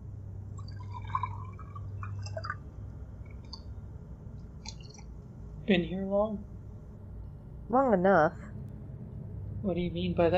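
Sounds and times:
steady low hum: 0:00.0 - 0:10.3
water trickling and splashing into a glass: 0:00.6 - 0:02.6
speech: 0:05.7 - 0:06.5, 0:07.7 - 0:08.4, 0:09.6 - 0:10.3.

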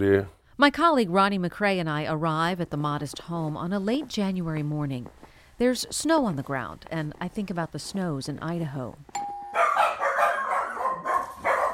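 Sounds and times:
speech: 0:00.0 - 0:09.2
novelty doorbell short electronic tone: 0:09.1 - 0:09.9
novelty doorbell recorded dog barks and yips: 0:09.6 - 0:11.7.

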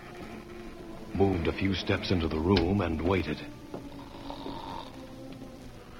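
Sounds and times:
speech: 0:01.2 - 0:03.7
person snoring deeply under bedclothes in a dark room: 0:03.9 - 0:05.1.

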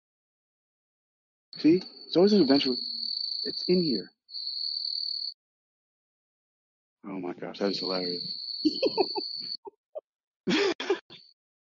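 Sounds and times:
speech: 0:01.6 - 0:04.2, 0:07.1 - 0:09.6
cricket chirping inside a martial arts studio: 0:01.6 - 0:05.4, 0:07.1 - 0:09.7
laughter: 0:08.7 - 0:09.4, 0:10.5 - 0:11.2.

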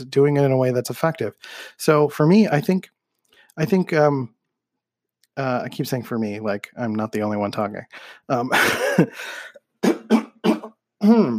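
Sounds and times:
speech: 0:00.0 - 0:03.0, 0:03.6 - 0:04.4, 0:05.4 - 0:10.3, 0:11.0 - 0:11.3
person coughing: 0:08.5 - 0:11.3
person clearing throat: 0:08.6 - 0:09.1, 0:09.8 - 0:11.3.

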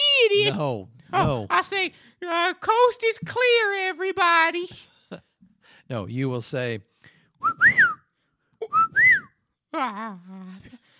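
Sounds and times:
speech: 0:00.2 - 0:05.3, 0:05.9 - 0:07.9, 0:09.7 - 0:10.8
person whistling a signal: 0:07.4 - 0:09.4.

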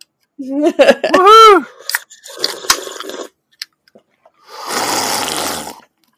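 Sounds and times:
person whooping: 0:01.1 - 0:01.7.

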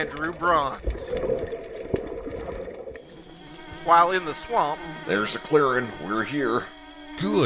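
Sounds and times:
speech: 0:00.0 - 0:01.6, 0:03.8 - 0:07.4
wash of ocean water heard underwater: 0:00.0 - 0:04.6.

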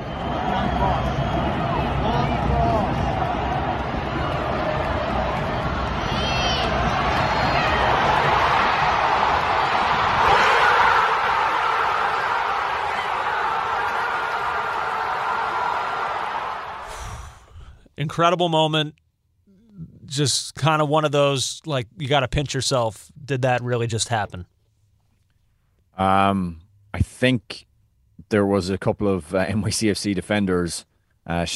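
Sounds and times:
huge stadium crowd roaring after a goal: 0:00.0 - 0:17.0
speech: 0:18.2 - 0:19.0, 0:20.1 - 0:24.5, 0:26.0 - 0:31.5.

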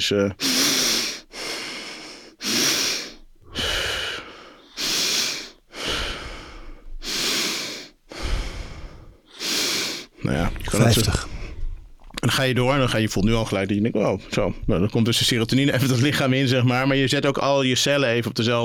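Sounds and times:
speech: 0:00.0 - 0:00.5, 0:10.9 - 0:11.3, 0:12.2 - 0:18.6
rapid forceful breathing without pauses: 0:00.4 - 0:10.3.

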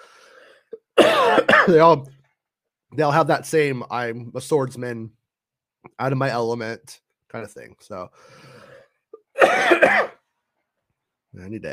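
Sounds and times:
person coughing in a loud rasping fit: 0:00.8 - 0:01.9, 0:09.2 - 0:10.2
speech: 0:01.7 - 0:02.2, 0:02.9 - 0:05.2, 0:05.8 - 0:08.6, 0:11.4 - 0:11.7.

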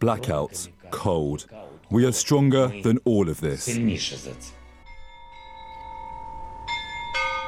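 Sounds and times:
speech: 0:00.0 - 0:04.6
large cathedral bells ringing: 0:04.8 - 0:07.4.

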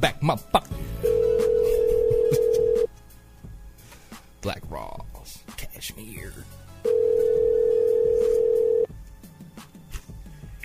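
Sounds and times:
speech: 0:00.0 - 0:00.8
ringback tone from an outgoing phone call: 0:01.0 - 0:02.9, 0:06.8 - 0:08.9.

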